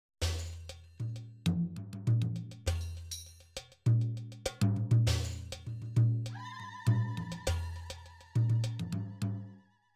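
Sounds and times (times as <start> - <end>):
Simmons SD1200 electronic drum Middle Eastern percussion: 0.2 - 9.2.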